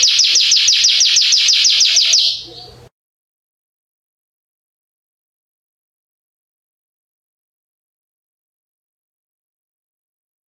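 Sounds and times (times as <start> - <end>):
yellow Belgian canary song: 0.0 - 2.9.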